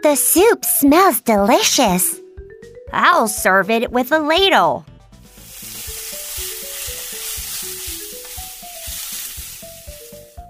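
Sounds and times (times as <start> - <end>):
speech: 0.0 - 2.2, 2.9 - 4.9
rice being stir-fried in a wok: 5.2 - 10.4.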